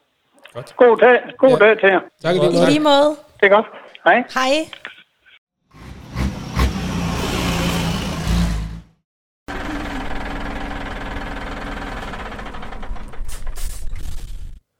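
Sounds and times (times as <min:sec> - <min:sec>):
speech: 0:00.5 - 0:04.9
biogas truck engine rumbling: 0:05.7 - 0:14.6.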